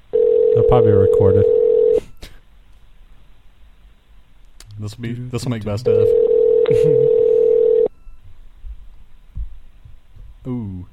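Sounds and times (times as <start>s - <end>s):
ringback tone from a phone line: 0.1s - 2.0s, 6.0s - 8.0s
speech: 0.7s - 1.6s, 4.8s - 7.1s
faint low thumps: 8.1s - 10.9s.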